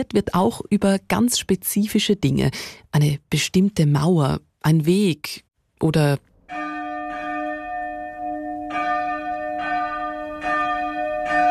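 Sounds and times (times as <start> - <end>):
speech: 0.0 - 6.6
church bells ringing in a steady peal: 6.5 - 11.5.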